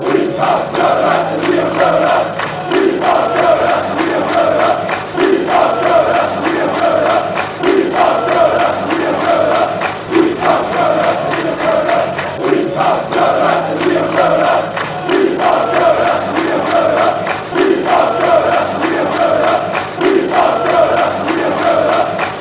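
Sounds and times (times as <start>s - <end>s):
people chanting: 0.0s - 22.3s.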